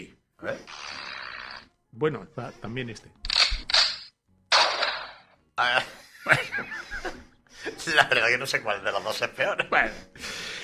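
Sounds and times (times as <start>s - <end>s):
speech: 0.0s - 1.0s, 2.0s - 3.3s, 5.6s - 6.7s, 7.9s - 10.4s
sharp loud gunshot sound effects: 3.6s - 5.3s
laughter: 5.6s - 10.0s.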